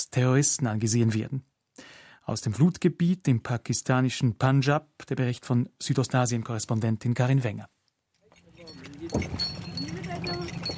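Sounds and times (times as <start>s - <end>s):
speech: 0.0s - 1.5s, 2.3s - 7.8s, 8.7s - 9.5s
donkey harness bells jingling: 8.2s - 10.7s
donkey cart loaded with branches rolling: 8.4s - 10.7s
branches rattling on a donkey cart: 8.5s - 10.7s.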